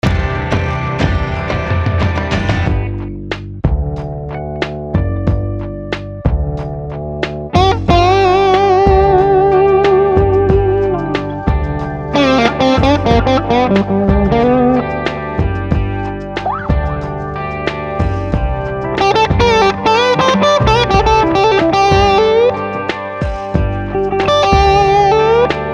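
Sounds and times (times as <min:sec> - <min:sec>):
electric guitar with humbucker pickup: 0:00.0 - 0:03.1, 0:03.8 - 0:25.7.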